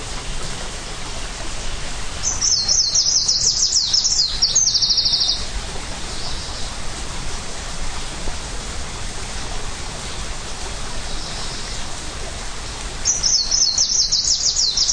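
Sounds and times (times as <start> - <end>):
steady background hiss: 0.0 - 14.9
greenish warbler song in Hilchenbach, Germany: 0.9 - 7.0, 10.9 - 12.0, 13.0 - 14.9.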